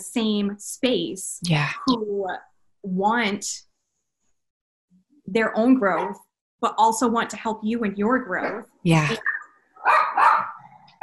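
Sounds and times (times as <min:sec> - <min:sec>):
speech: 0:00.0 - 0:03.7, 0:05.3 - 0:09.2
puppies barking: 0:09.2 - 0:11.0.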